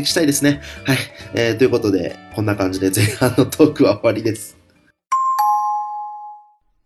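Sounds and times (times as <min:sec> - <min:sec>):
speech: 0:00.0 - 0:04.6
two-note doorbell-style chime: 0:05.1 - 0:06.7.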